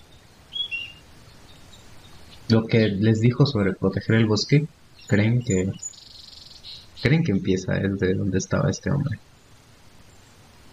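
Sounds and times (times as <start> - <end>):
short high bird chirps: 0.0 - 7.8
birds singing in a green forest with bushes: 0.0 - 10.7
soft steady outdoor hush: 0.0 - 10.7
speech: 2.5 - 5.9, 7.0 - 9.3.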